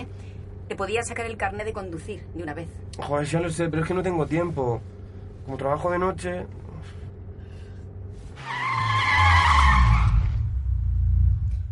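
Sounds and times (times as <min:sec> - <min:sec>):
speech: 0:00.7 - 0:07.0
car tires squealing under hard braking: 0:08.3 - 0:10.7.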